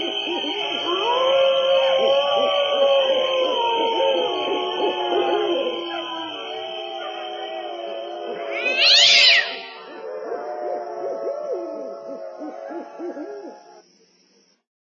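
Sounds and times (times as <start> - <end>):
low hoot-like notes: 0.0 - 13.9
cat giving long wavering meow-like cries: 8.5 - 9.8.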